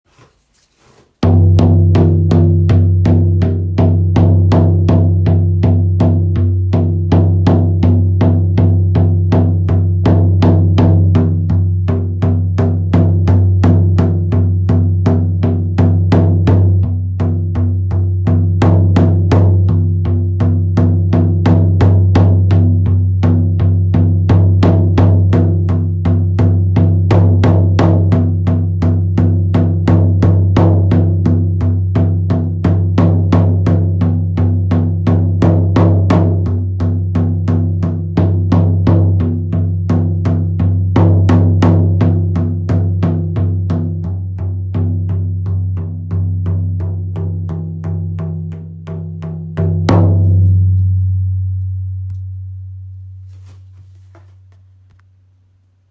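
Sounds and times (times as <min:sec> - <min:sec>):
horse ritual drum: 0:01.2 - 0:51.5.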